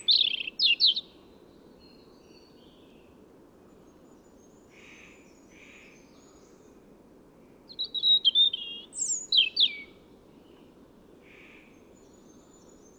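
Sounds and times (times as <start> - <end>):
European robin Erithacus rubecula singing: 0.0 - 1.1, 7.7 - 9.9
steady low background hiss: 0.0 - 12.9.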